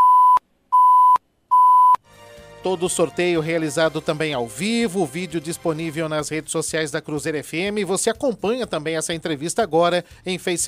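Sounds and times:
electronic warning beeps alerting ten seconds remaining in a radio interview: 0.0 - 2.0
speech: 2.6 - 10.6.

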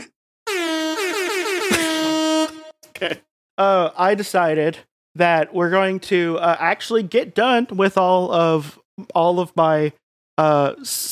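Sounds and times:
air horn blasts: 0.5 - 2.9
speech: 3.0 - 11.1.

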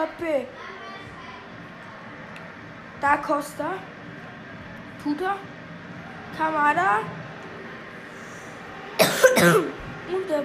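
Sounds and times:
speech: 0.0 - 0.7, 3.0 - 4.0, 5.0 - 5.5, 6.3 - 7.2, 9.3 - 10.4
dry raspy cough: 9.0 - 9.8.

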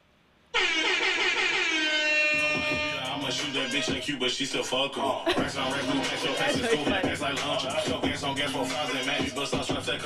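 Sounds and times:
air horn blaring: 0.5 - 3.8
speech: 2.7 - 10.0.

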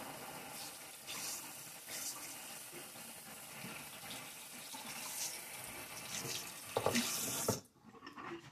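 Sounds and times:
water running from a tap while rinsing hands: 0.0 - 7.6.

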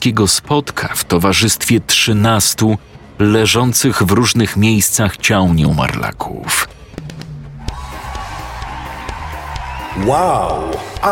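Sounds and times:
speech: 0.0 - 6.8, 10.0 - 11.0
large crowd cheering: 7.6 - 11.0.

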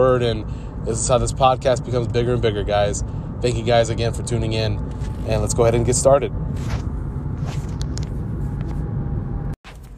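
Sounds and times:
speech: 0.0 - 6.9
car driving with low engine and road noise rumble: 0.0 - 9.9.

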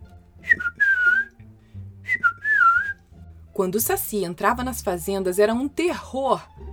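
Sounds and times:
person whistling phrases: 0.4 - 1.4, 2.1 - 3.0
speech: 3.6 - 6.7.

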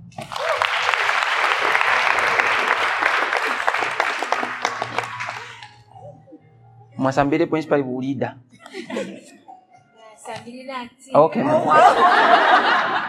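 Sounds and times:
audience applauding a woman speaker: 0.0 - 5.8
laughter: 1.6 - 5.8, 8.6 - 9.6, 11.4 - 13.0
speech: 7.0 - 9.1, 10.7 - 13.0.

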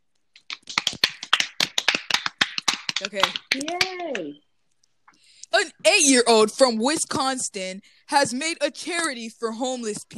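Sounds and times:
hands clapping: 0.4 - 4.4
speech: 3.0 - 4.5, 5.5 - 10.1.

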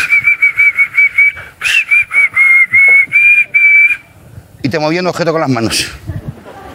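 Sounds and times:
person whistling a simple tune: 0.0 - 4.0
speech: 4.7 - 6.1.

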